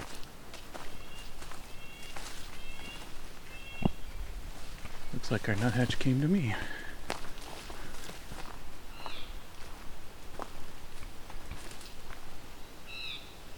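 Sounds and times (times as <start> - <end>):
crunching footsteps: 0.0 - 12.4
outdoor noise: 0.0 - 13.5
blue jay calling: 0.9 - 4.2, 8.9 - 9.4, 12.6 - 13.4
speech: 5.3 - 6.8.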